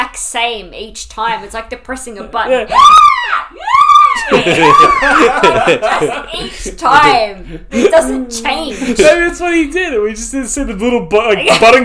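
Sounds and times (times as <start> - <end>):
speech: 0.2 - 3.7, 4.3 - 11.8
villain's recorded movie scream: 2.7 - 5.5
laughter: 4.0 - 8.2.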